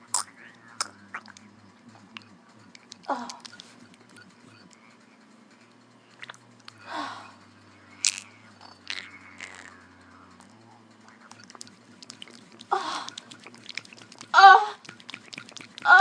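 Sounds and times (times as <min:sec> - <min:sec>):
vibrator motor buzzing: 0:00.0 - 0:16.0
speech: 0:03.1 - 0:03.4
wet squelching splashes: 0:11.4 - 0:16.0.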